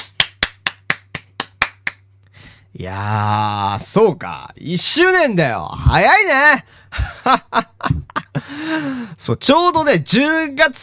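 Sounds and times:
sharp hand claps from one person: 0:00.0 - 0:02.1
faint low hum: 0:00.0 - 0:10.8
speech: 0:02.8 - 0:10.8.

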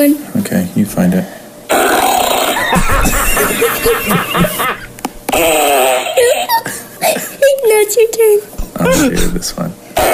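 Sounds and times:
speech: 0:00.0 - 0:01.4, 0:02.7 - 0:04.7, 0:07.6 - 0:10.1
fart sound effect played on a soundboard: 0:01.7 - 0:03.4, 0:05.3 - 0:06.5, 0:10.0 - 0:10.1
laughter: 0:02.5 - 0:05.0.

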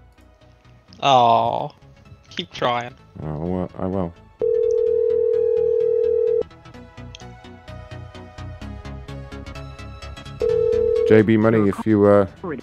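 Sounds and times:
speech: 0:01.0 - 0:01.8, 0:02.4 - 0:04.2, 0:11.1 - 0:12.6
telephone busy signal: 0:04.4 - 0:06.4, 0:10.4 - 0:11.2.

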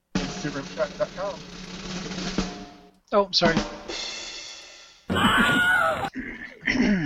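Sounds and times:
speech: 0:00.4 - 0:02.0, 0:03.1 - 0:04.1
Wilhelm scream sound effect of a man yelping in pain: 0:05.1 - 0:06.1.

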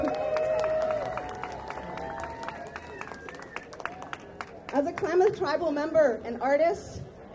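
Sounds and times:
crowd cheering: 0:00.0 - 0:04.4
crowd applauding with dense scattered clapping: 0:00.0 - 0:05.2
speech: 0:04.8 - 0:07.0.

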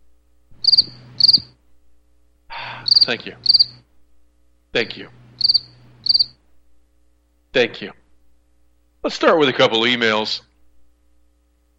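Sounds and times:
faint low hum: 0:00.0 - 0:11.7
cricket chirping: 0:00.6 - 0:01.6, 0:02.8 - 0:03.8, 0:05.4 - 0:06.4
speech: 0:03.0 - 0:03.7, 0:04.7 - 0:05.6, 0:07.6 - 0:08.0, 0:09.0 - 0:10.5.

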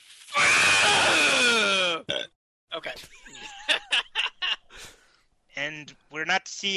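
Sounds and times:
person screaming in frustration: 0:00.4 - 0:02.0
speech: 0:02.8 - 0:03.8, 0:05.6 - 0:06.7
laughter: 0:03.0 - 0:04.9.

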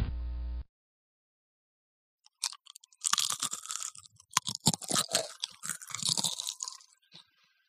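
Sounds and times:
person crunching while chewing something crisp: 0:02.3 - 0:07.4.

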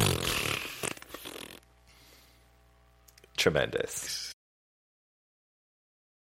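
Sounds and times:
balloon deflating with a raspy farting squeal: 0:00.0 - 0:01.6
speech: 0:03.4 - 0:04.3.

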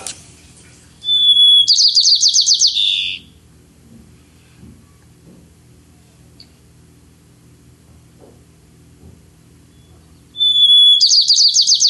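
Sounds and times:
white-crowned sparrow singing: 0:01.0 - 0:03.4, 0:09.8 - 0:11.8.

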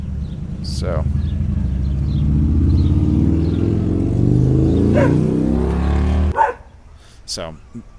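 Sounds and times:
motorcycle passing with loud engine rumbling: 0:00.0 - 0:07.0
speech: 0:00.7 - 0:01.4, 0:05.0 - 0:05.4, 0:07.3 - 0:07.9.

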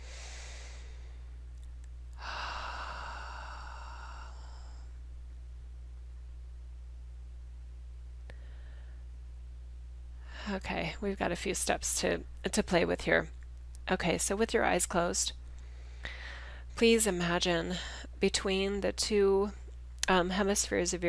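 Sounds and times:
deep breathing during a guided relaxation session: 0:00.0 - 0:01.4, 0:02.2 - 0:05.0, 0:08.3 - 0:09.1, 0:15.6 - 0:16.7
steady low hum: 0:00.0 - 0:21.0
speech: 0:10.5 - 0:15.4, 0:16.8 - 0:21.0.

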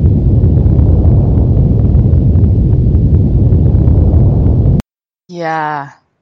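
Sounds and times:
deep continuous earthquake rumble: 0:00.0 - 0:04.8
speech: 0:05.4 - 0:06.0.

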